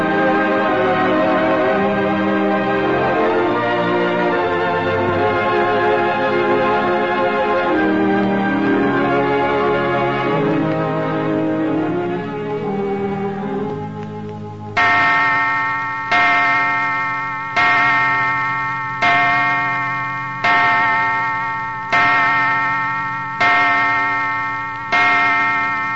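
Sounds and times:
orchestral music: 0.0s - 16.3s
clock chiming midnight with deep resonant bell strokes: 2.4s - 25.9s.

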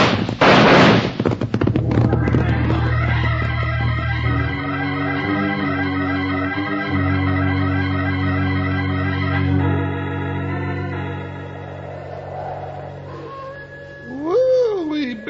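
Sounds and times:
signal shot fired to call others to close in: 0.0s - 1.5s
music: 1.7s - 15.2s.

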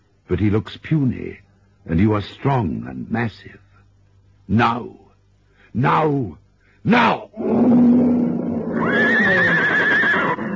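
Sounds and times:
speech: 0.3s - 3.6s, 4.5s - 5.0s, 5.7s - 7.9s
horse neighing while hunted by a lion: 7.4s - 10.5s.

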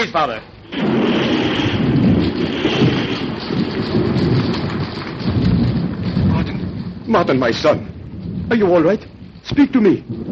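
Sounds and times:
speech: 0.0s - 1.0s, 7.1s - 7.9s, 8.5s - 10.3s
booming roll of thunder from a lightning strike: 0.0s - 10.3s
steady downpour of hard rain: 0.0s - 10.3s
wind buffeting: 0.0s - 10.3s.

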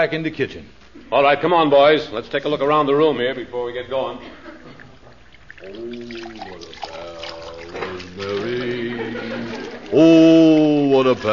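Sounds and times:
speech: 0.0s - 4.5s, 5.6s - 7.1s, 9.9s - 11.3s
laughter: 4.2s - 5.3s, 7.7s - 10.8s
water pouring into a glass with ice cubes: 5.3s - 8.5s.

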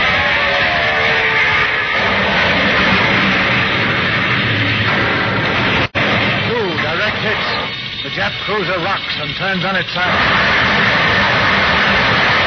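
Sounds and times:
loud steady engine roar with broad rushing noise: 0.0s - 12.4s
speech: 8.5s - 10.8s.

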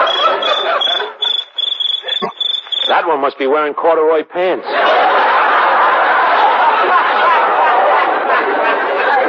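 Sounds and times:
laughter: 0.0s - 1.4s, 2.0s - 2.4s, 4.6s - 9.2s
cricket chirping: 0.0s - 3.0s
night insects buzzing: 0.0s - 3.0s
speech: 3.0s - 5.1s.

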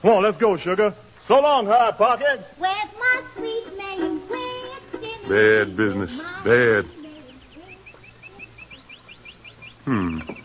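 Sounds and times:
speech: 0.0s - 3.8s, 5.3s - 7.0s, 9.9s - 10.4s
birds singing: 3.8s - 10.4s.

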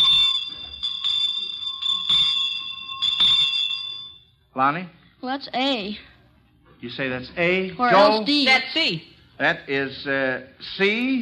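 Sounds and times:
Christmas street handbell ringing: 0.0s - 4.3s
speech: 4.6s - 6.1s, 6.8s - 11.2s.

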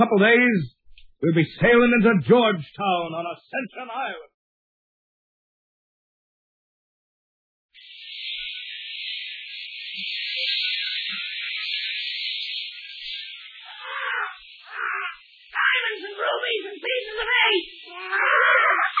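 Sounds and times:
speech: 0.0s - 4.3s
parrot screeching: 13.6s - 18.9s.

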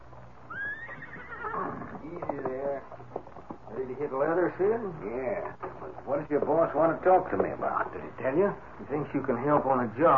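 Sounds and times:
horse hooves clopping: 0.0s - 10.1s
low hum: 0.0s - 10.1s
horse with a long rising wavering whinny: 0.4s - 2.5s
speech: 4.0s - 10.1s.

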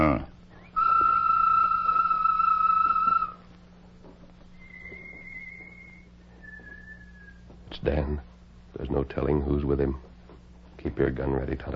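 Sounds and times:
person whistling a bird call: 0.5s - 3.4s, 4.6s - 7.5s
speech: 7.8s - 8.3s, 9.0s - 10.1s, 10.8s - 11.7s.

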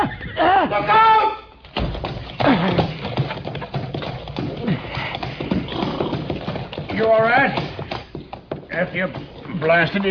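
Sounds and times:
speech: 0.0s - 1.1s, 8.9s - 10.1s
horse hooves pounding in a fast run: 0.0s - 10.1s
horse snorting: 2.2s - 10.1s.

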